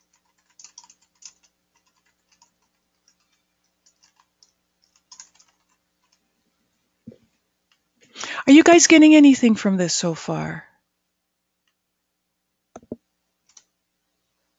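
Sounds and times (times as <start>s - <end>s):
typing on a computer keyboard: 0.0s - 6.2s, 12.8s - 13.7s
speech: 8.5s - 10.7s.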